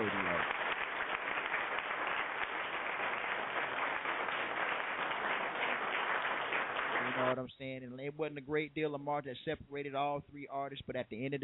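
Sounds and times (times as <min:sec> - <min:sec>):
crowd applauding: 0:00.0 - 0:07.4
speech: 0:07.3 - 0:11.4.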